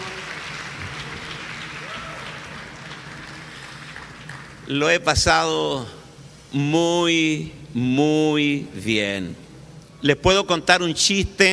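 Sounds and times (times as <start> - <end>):
crowd applauding: 0.0 - 4.7
speech: 4.7 - 9.4, 10.0 - 11.5.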